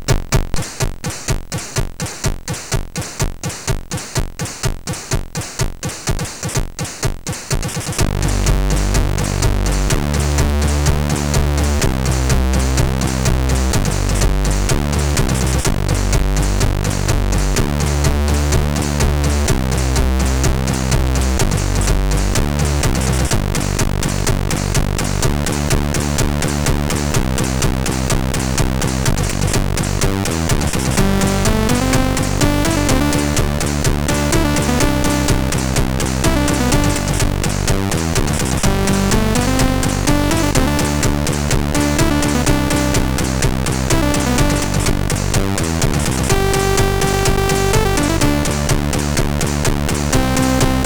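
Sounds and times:
death metal on a MOS6581R4 sound chip: 0.2s - 50.8s.

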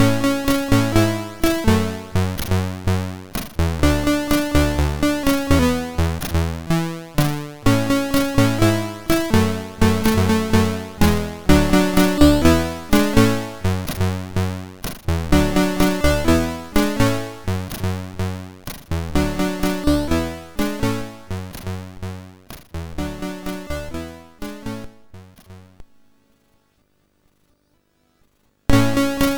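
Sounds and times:
commercial tune on a MOS6581R4 SID chip: 0.0s - 25.9s, 28.7s - 29.3s.

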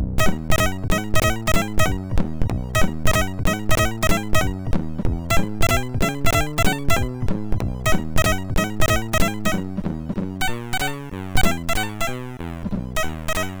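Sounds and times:
engine synthesized on MOS6581R2 sound chip: 0.2s - 13.5s.

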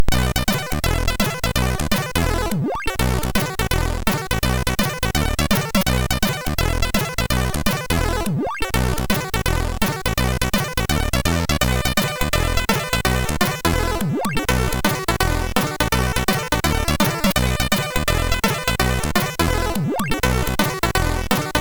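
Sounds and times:
MOS 6581R3 SID chip sound: 0.1s - 15.0s, 16.3s - 21.5s.

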